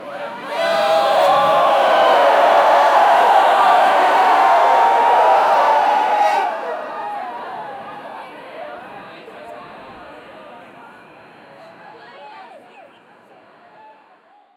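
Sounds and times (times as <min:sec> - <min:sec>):
concert crowd: 0:00.0 - 0:08.9.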